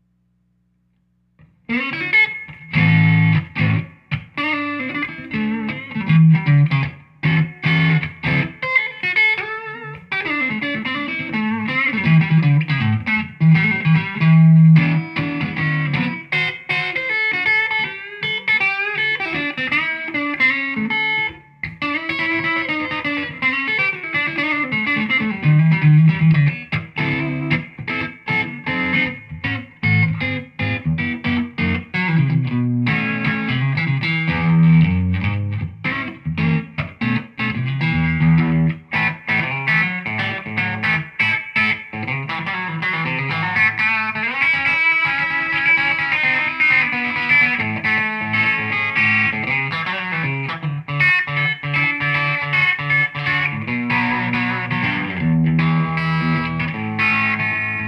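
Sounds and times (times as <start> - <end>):
Stratocaster electric guitar playing swing with light grind: 1.4 - 57.8.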